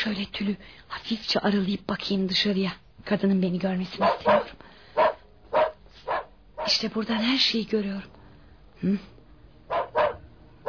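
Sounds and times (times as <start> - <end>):
speech: 0.0 - 4.7, 6.7 - 8.2, 8.8 - 9.1
dogs barking in a radio drama: 4.0 - 6.8, 9.7 - 10.6.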